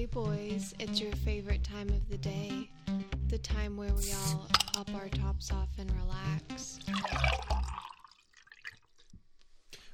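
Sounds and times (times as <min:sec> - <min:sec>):
speech: 0:00.1 - 0:02.7, 0:03.5 - 0:07.7
person drinking fresh water: 0:06.9 - 0:09.1.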